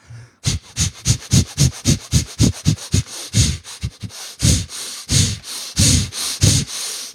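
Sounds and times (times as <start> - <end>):
chaotic arrhythmic breathing of dynamic meditation: 0.0 - 7.1.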